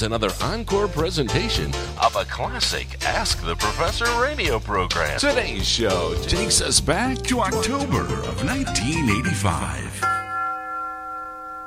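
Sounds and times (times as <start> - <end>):
speech: 0.0 - 10.1
university tower chimes ringing: 7.9 - 11.6.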